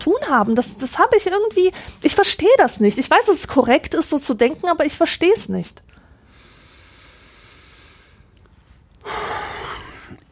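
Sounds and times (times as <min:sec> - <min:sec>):
speech: 0:00.0 - 0:05.9
heavy forceful breath: 0:06.0 - 0:08.3, 0:09.0 - 0:10.2.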